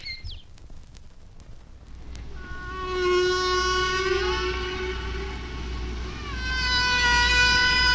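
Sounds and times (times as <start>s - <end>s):
humpback whale song sped up: 2.3s - 7.9s.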